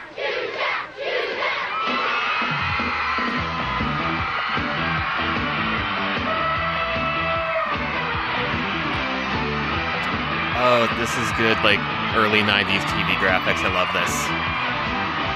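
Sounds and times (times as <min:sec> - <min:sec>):
large crowd cheering and screaming wildly: 0:00.0 - 0:15.3
steady rhythmic music track thumping: 0:02.4 - 0:15.3
speech: 0:10.8 - 0:14.5.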